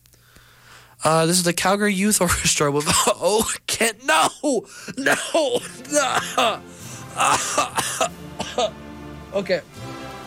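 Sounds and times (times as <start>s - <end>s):
speech: 1.0s - 9.9s
person coughing: 2.8s - 8.8s.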